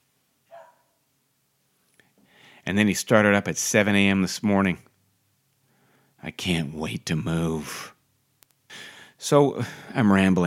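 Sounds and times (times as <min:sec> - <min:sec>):
dog bark: 0:00.5 - 0:01.0
speech: 0:02.7 - 0:04.9, 0:06.4 - 0:08.0, 0:09.2 - 0:10.4
faint click: 0:08.4 - 0:08.6.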